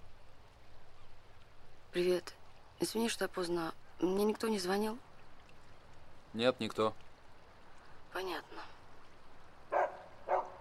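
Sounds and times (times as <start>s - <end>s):
speech: 2.0s - 5.1s, 6.3s - 7.0s, 8.1s - 8.7s
shaggy dog barking on a bridge over water in fog: 9.7s - 10.5s.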